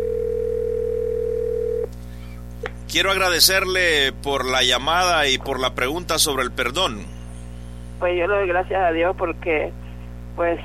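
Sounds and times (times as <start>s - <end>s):
telephone line tone as a call connects: 0.0s - 1.9s
low hum: 0.0s - 10.6s
speech: 2.9s - 7.1s, 8.0s - 9.8s, 10.4s - 10.6s.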